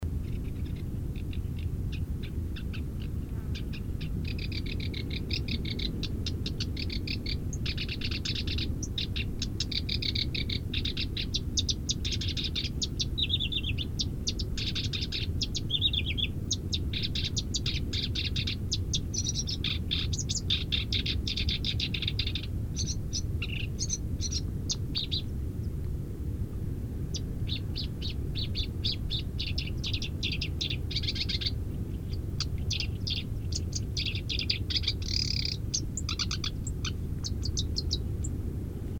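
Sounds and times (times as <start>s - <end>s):
black-browed reed warbler song in Changle Fujian: 0.0s - 38.9s.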